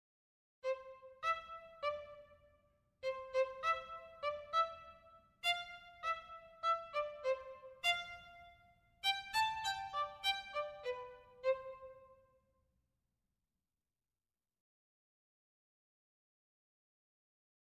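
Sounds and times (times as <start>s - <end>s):
violin playing staccato articulations: 3.1s - 12.0s.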